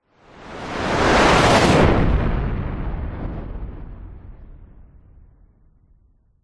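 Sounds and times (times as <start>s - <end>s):
designed fighter jet zooming past very fast: 0.3s - 4.0s.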